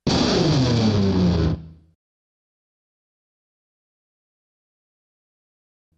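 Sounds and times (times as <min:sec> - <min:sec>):
solo guitar riff: 0:00.1 - 0:01.8.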